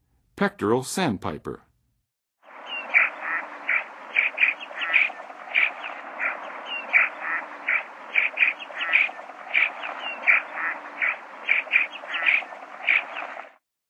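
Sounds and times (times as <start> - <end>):
Pectoral Sandpiper calling: 2.5 - 13.6.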